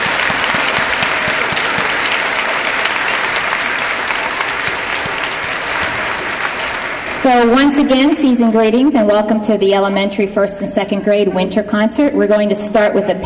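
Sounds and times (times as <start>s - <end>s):
large audience applause: 0.0s - 7.8s
speech: 7.3s - 13.2s.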